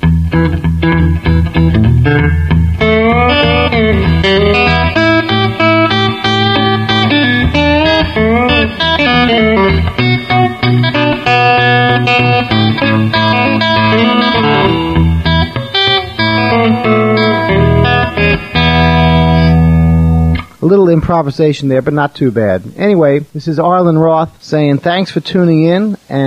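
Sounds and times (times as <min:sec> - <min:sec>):
distorted electric guitar playing a fast turnaround lick: 0:00.0 - 0:20.7
speech: 0:00.3 - 0:02.5, 0:21.1 - 0:26.2.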